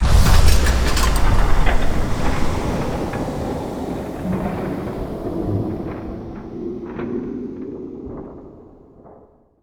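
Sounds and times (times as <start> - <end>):
weaver power chamber activating: 0.0 - 5.5.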